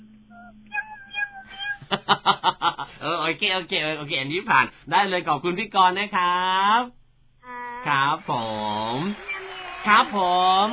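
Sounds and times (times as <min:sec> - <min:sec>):
person imitating a cute cat meow: 0:00.3 - 0:01.8, 0:07.4 - 0:08.0
speech: 0:00.5 - 0:01.1, 0:01.9 - 0:07.0, 0:07.8 - 0:10.7
laughter: 0:01.8 - 0:03.0.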